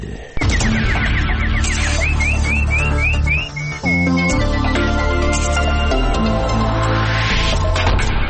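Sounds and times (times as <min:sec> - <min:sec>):
nightingale-like chirps and trills: 0:00.4 - 0:06.3
whistled tones: 0:00.4 - 0:06.4
rising sweep: 0:00.4 - 0:07.7
loud steady musical backing: 0:00.4 - 0:08.2.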